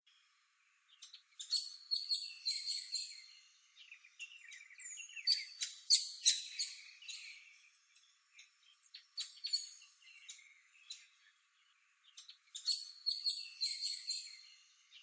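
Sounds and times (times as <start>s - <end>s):
Common Blackbird calling: 0.9s - 15.0s.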